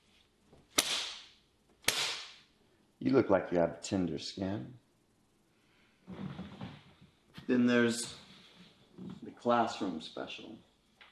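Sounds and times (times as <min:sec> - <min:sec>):
whip cracks: 0:00.8 - 0:02.4
speech: 0:03.0 - 0:04.8, 0:07.5 - 0:08.2, 0:09.0 - 0:10.7.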